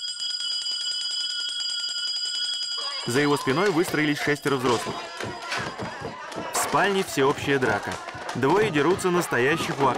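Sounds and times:
hand bell rung in a canteen: 0.0 - 5.7
speech: 3.0 - 9.9.

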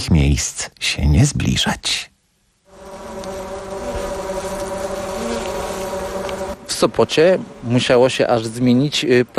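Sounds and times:
speech: 0.1 - 2.1, 6.8 - 9.3
honey bees kept in a town buzzing: 2.7 - 8.8.

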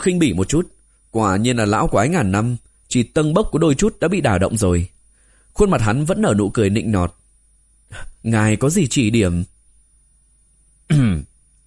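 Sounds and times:
speech: 0.0 - 5.0, 5.6 - 7.2, 7.9 - 9.5, 10.9 - 11.3
light feigned cough: 10.9 - 11.3.

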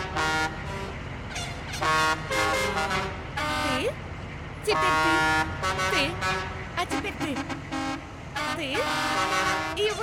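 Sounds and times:
car horns honking: 0.0 - 3.9, 4.7 - 10.0
speech: 4.7 - 7.6.

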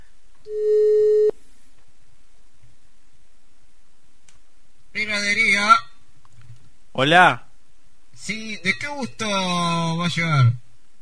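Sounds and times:
quiet telephone line noise: 0.0 - 11.0
telephone busy signal on an international call: 0.5 - 1.3
speech: 7.0 - 7.4, 8.2 - 10.6.

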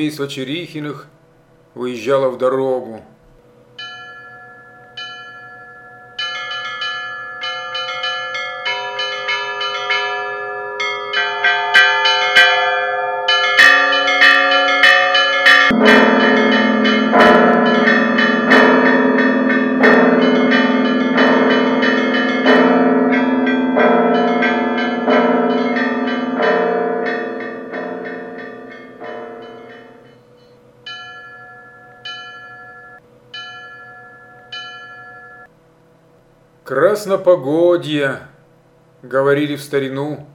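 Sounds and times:
speech: 0.0 - 1.2, 1.8 - 3.2, 37.2 - 38.3, 39.0 - 40.3
church bells pealing from a new bell tower: 3.8 - 35.5.

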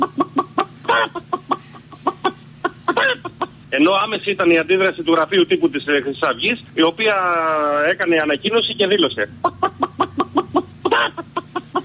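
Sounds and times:
chickens clucking in a henhouse: 0.0 - 3.7, 9.3 - 11.8
laughter: 0.0 - 7.4, 8.1 - 11.8
speech: 3.8 - 9.8.

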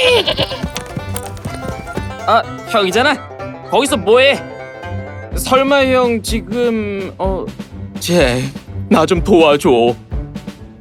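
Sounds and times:
goat bleating in an animated children's fairy tale: 0.0 - 0.9
speech: 2.3 - 4.5, 5.4 - 10.0.

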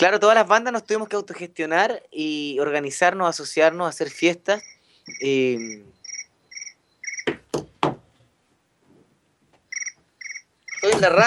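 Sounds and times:
speech: 0.0 - 5.9, 10.8 - 11.2
cricket chirping: 4.5 - 7.3, 9.7 - 10.9
sharp knocks: 7.2 - 8.1.

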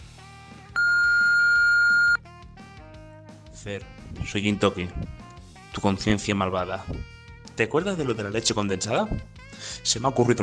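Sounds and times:
answering machine beep: 0.8 - 2.2
quiet music: 2.2 - 10.4
speech: 3.6 - 5.2, 5.8 - 10.4.

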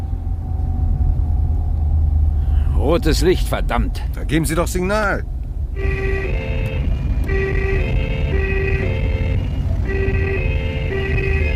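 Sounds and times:
car engine rumbling as the car drives off: 0.0 - 11.5
speech: 2.9 - 6.1.

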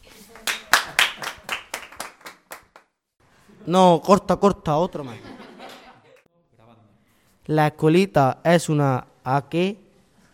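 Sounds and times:
audience clapping at a neighborhood homework-help school event: 0.0 - 2.9
speech: 3.7 - 5.3, 7.5 - 9.8
laughter: 4.8 - 6.3.

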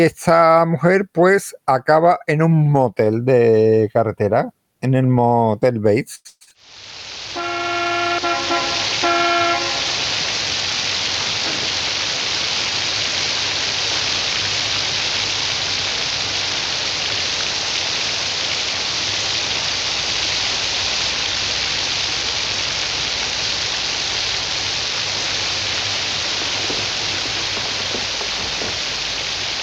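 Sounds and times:
speech: 0.0 - 6.9
heavy rain on a stormy night at a roadside motel: 6.6 - 29.6
harmonic horn-like tone: 7.3 - 10.3.

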